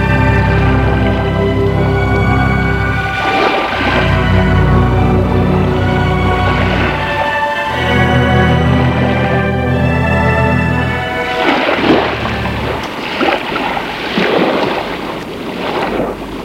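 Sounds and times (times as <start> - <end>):
boat engine drone with harmonic hum: 0.0 - 14.1
water splashing and rushing from a boat moving through waves: 0.0 - 16.4
wind buffeting the microphone: 11.4 - 16.4.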